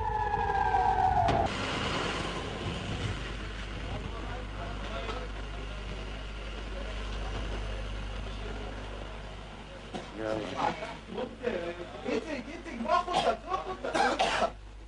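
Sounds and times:
emergency vehicle siren: 0:00.0 - 0:03.3
steady low engine rumble: 0:00.0 - 0:14.0
faint voices: 0:03.7 - 0:14.4.

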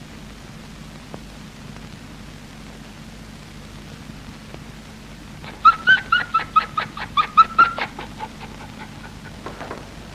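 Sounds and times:
dog panting and whimpering: 0:05.4 - 0:09.5.

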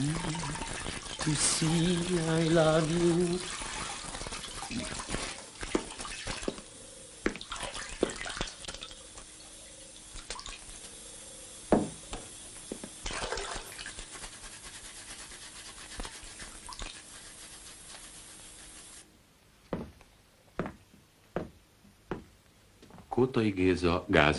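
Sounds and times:
shower water running: 0:00.0 - 0:19.1
speech: 0:01.2 - 0:03.7, 0:23.4 - 0:24.3
sharp knocks: 0:11.7 - 0:12.8.

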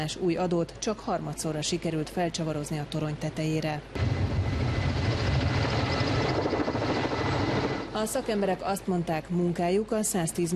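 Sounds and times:
speech: 0:00.0 - 0:04.2, 0:08.0 - 0:10.5
helicopter hovering overhead: 0:04.0 - 0:08.7.

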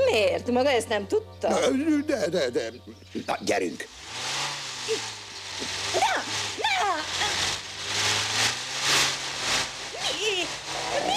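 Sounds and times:
speech: 0:00.2 - 0:03.9, 0:04.9 - 0:05.1
car engine with ignition trouble running roughly and sputtering: 0:03.9 - 0:11.1.

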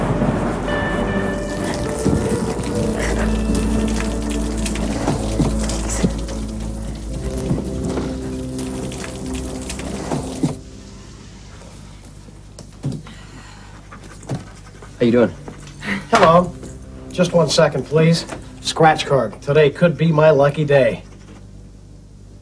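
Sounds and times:
low rumble: 0:00.0 - 0:12.6, 0:15.6 - 0:20.4
steady rain pouring and striking surfaces: 0:00.0 - 0:12.6, 0:15.0 - 0:21.2
speech: 0:15.1 - 0:15.4, 0:17.2 - 0:21.1.

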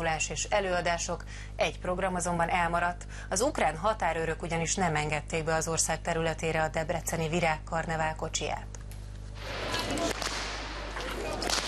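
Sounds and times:
speech: 0:00.0 - 0:08.8
whips cracking by betyár performers parading in Uzhhorod: 0:09.4 - 0:11.6.

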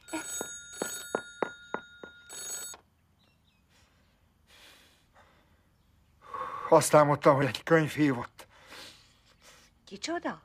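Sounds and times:
electronic telephone ringing with bright buzzy tonal bursts: 0:00.0 - 0:02.9
speech: 0:06.7 - 0:08.3, 0:09.9 - 0:10.4.

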